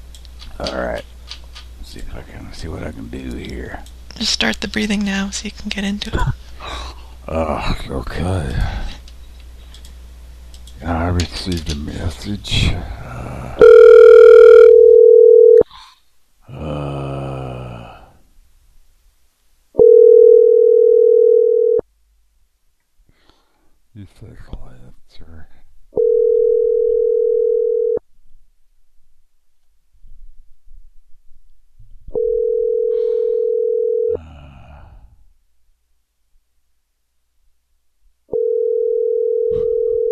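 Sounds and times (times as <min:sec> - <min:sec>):
speech: 0:00.6 - 0:01.1, 0:02.0 - 0:06.4, 0:07.3 - 0:08.9, 0:10.8 - 0:13.0
telephone ringback tone on an outgoing call: 0:13.6 - 0:15.6, 0:19.8 - 0:21.8, 0:26.0 - 0:28.0, 0:32.2 - 0:34.2, 0:38.3 - 0:40.1.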